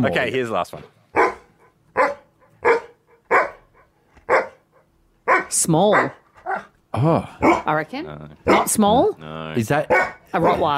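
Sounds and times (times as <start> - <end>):
speech: 0.0 - 1.0, 5.5 - 10.7
border collie barking: 1.1 - 6.7, 7.4 - 7.7, 8.4 - 8.8, 9.9 - 10.7.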